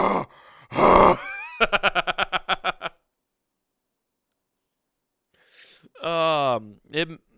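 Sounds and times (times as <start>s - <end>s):
hard breathy exhales to unlock a phone: 0.0s - 0.9s, 5.4s - 5.9s
short grunt: 0.0s - 1.2s
laughter: 1.2s - 3.0s.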